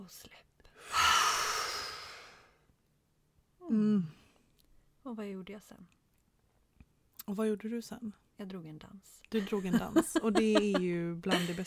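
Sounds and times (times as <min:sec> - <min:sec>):
speech: 0:00.0 - 0:00.4, 0:03.7 - 0:04.2, 0:05.0 - 0:06.0, 0:07.3 - 0:11.6
long breathy exhale: 0:00.8 - 0:02.5
laughter: 0:09.5 - 0:11.6.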